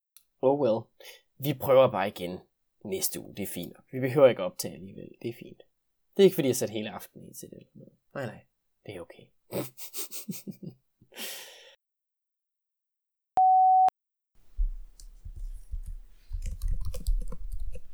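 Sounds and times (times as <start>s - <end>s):
speech: 0.4s - 11.5s
laughter: 9.5s - 10.7s
steady busy-signal beep: 13.4s - 13.9s
rustling and clicky handling noise: 14.4s - 17.9s.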